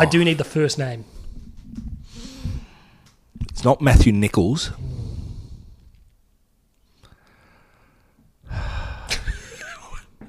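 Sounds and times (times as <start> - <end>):
speech: 0.0 - 1.8, 3.6 - 4.9
heavy close-miked breathing into the microphone: 1.1 - 3.2, 4.7 - 6.0, 7.0 - 9.3.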